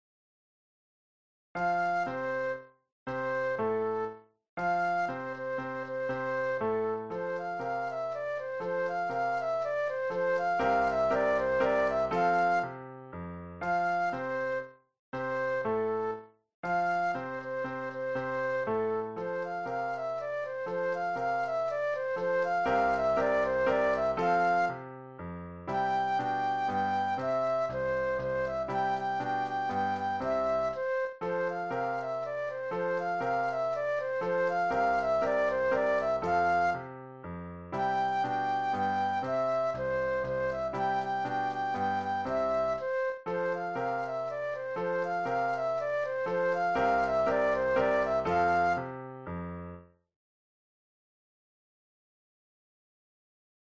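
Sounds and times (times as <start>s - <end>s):
classical dance flute solo: 1.6s - 12.9s, 13.6s - 25.0s, 25.7s - 37.0s, 37.8s - 49.0s.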